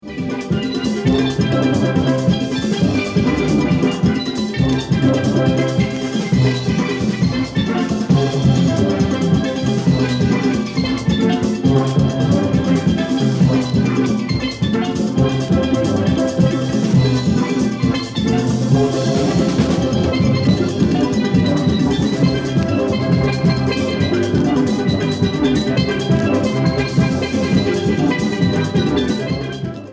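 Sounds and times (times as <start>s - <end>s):
steel drums: 0.0s - 29.9s.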